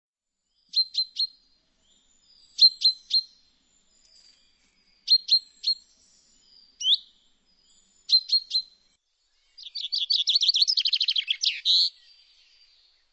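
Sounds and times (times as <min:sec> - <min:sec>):
bird chirps and trill: 0:00.4 - 0:13.1.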